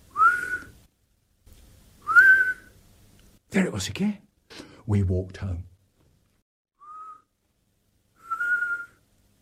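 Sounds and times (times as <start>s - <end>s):
whistling breath through a broken tooth: 0.1s - 0.8s, 2.0s - 2.8s, 6.8s - 7.3s, 8.2s - 9.0s
speech: 3.5s - 5.7s
person breathing quietly: 4.5s - 4.9s.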